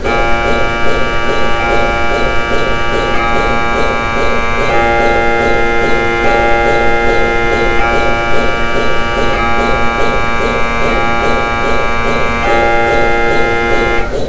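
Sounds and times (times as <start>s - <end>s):
ambient cryogenic drone: 0.0s - 14.2s.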